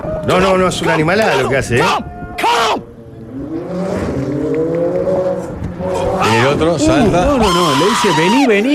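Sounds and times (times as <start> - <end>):
speech: 0.3 - 2.1, 6.6 - 8.7
powerful car engine roaring as it speeds past and accelerates: 2.8 - 7.8.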